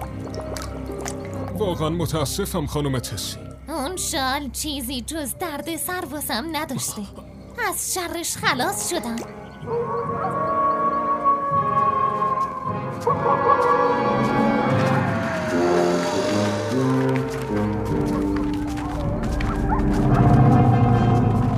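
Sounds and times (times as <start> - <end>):
speech: 1.6 - 10.4
wolves howling in a loud chorus: 9.5 - 21.5.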